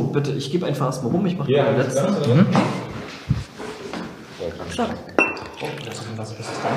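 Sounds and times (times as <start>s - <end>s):
speech: 0.2s - 2.9s, 4.8s - 6.7s
glassware clinking and clattering: 3.9s - 6.2s
whisky poured into glasses for a whisky tasting: 4.0s - 6.7s.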